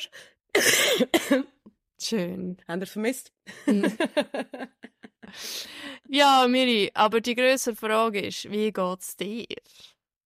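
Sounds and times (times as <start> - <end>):
speech: 0.0 - 4.8, 5.4 - 9.9
person coughing harshly: 0.5 - 1.6
laughter: 3.5 - 5.3.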